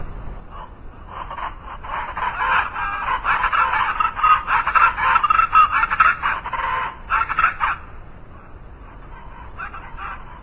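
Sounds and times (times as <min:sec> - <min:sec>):
chachalaca calling: 0:00.6 - 0:08.0, 0:09.1 - 0:10.4.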